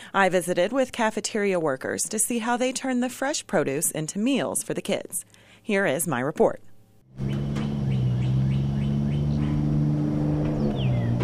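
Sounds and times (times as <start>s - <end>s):
speech: 0.1s - 7.5s
birds chirping: 7.2s - 11.2s
car engines idling and pulling up behind a school: 7.2s - 11.2s.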